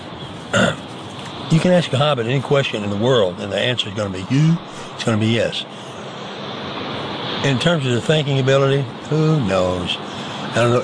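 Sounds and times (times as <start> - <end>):
quiet room hiss: 0.0 - 10.8
burp: 0.5 - 0.8
speech: 1.5 - 5.9, 7.4 - 10.8.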